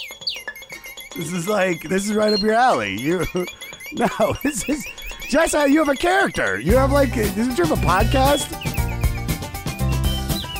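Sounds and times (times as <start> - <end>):
bird chirping: 0.0 - 10.5
laughter: 1.2 - 8.4
speech: 1.2 - 8.7
soft music: 6.6 - 10.5.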